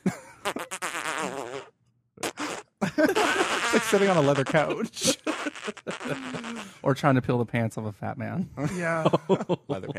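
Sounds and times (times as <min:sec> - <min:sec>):
wet sputtering fart sound effect: 0:00.4 - 0:06.8
laughter: 0:02.8 - 0:06.7, 0:08.6 - 0:09.9
speech: 0:03.9 - 0:05.2, 0:06.9 - 0:09.9.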